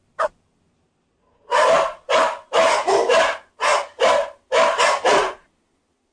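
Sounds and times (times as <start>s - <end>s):
dog barking: 1.4s - 5.5s.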